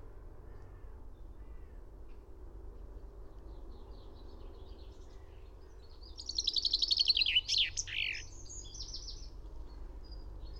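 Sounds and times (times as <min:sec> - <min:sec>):
Common chaffinch Fringilla coelebs song: 0:06.2 - 0:09.4.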